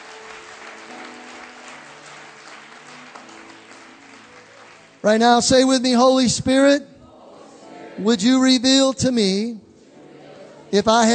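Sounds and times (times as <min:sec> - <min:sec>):
audience clapping in praise: 0:00.0 - 0:05.7
speech: 0:05.0 - 0:06.9, 0:08.0 - 0:09.6, 0:10.7 - 0:11.1.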